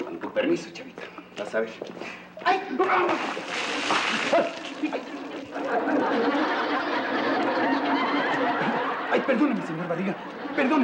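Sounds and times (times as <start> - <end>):
speech: 0.4 - 7.4, 8.2 - 10.8
thrown-out water splashing and splattering: 3.0 - 5.8
laughter: 3.5 - 10.8.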